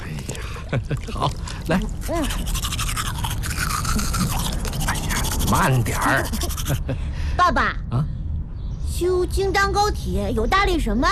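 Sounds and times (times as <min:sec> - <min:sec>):
child brushing teeth with a toothbrush: 0:00.1 - 0:06.8
speech: 0:00.7 - 0:02.8, 0:03.9 - 0:04.5, 0:05.5 - 0:08.2, 0:09.0 - 0:11.1.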